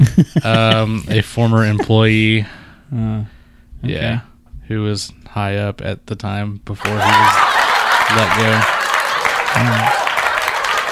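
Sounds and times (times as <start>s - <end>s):
laughter: 0.0s - 2.2s, 6.8s - 10.9s
speech: 0.2s - 7.5s, 8.1s - 8.8s, 9.5s - 10.0s
audience applause: 6.8s - 10.9s.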